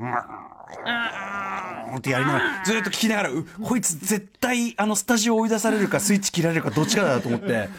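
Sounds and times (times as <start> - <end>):
person growling in imitation of a tiger: 0.0 - 3.0
speech: 0.0 - 7.7
laughter: 5.7 - 7.7.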